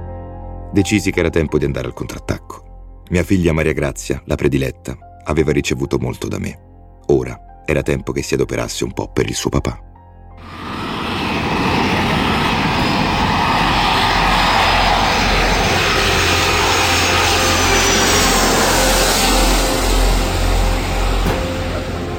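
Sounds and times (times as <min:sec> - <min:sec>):
speech: 0:00.7 - 0:10.5
airplane landing at Fiumicino international airport after a flight from Rio de Janeiro: 0:10.4 - 0:22.1.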